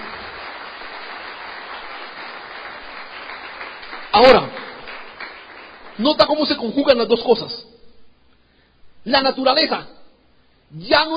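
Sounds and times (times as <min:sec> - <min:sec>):
church congregation applauding during a sermon: 0:00.0 - 0:07.0
speech: 0:04.2 - 0:04.5, 0:06.0 - 0:07.7, 0:09.0 - 0:10.0, 0:10.7 - 0:11.1.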